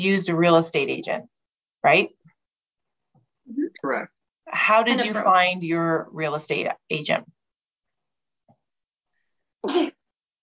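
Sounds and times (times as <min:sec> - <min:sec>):
speech: 0:00.0 - 0:02.2, 0:03.5 - 0:07.4
person sneezing: 0:09.6 - 0:10.0.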